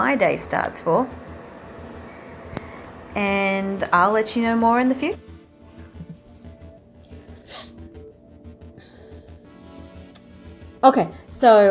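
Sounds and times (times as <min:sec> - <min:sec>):
steady low rhythmic hum: 0:00.0 - 0:11.6
speech: 0:00.1 - 0:01.2, 0:03.1 - 0:05.2, 0:10.8 - 0:11.6
person with a runny nose sniffing: 0:07.5 - 0:07.8.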